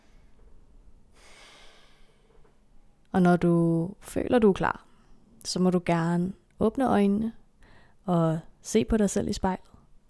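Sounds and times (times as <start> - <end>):
long deep inhalation through the belly: 1.1 - 2.5
soft exhale: 1.1 - 2.5
speech: 3.2 - 7.4, 8.0 - 9.7.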